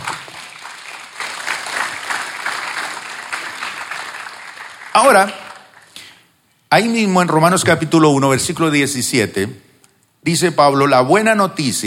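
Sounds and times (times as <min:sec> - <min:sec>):
sizable crowd applauding: 0:00.0 - 0:06.1
speech: 0:05.0 - 0:05.4, 0:06.7 - 0:09.6, 0:10.2 - 0:11.8.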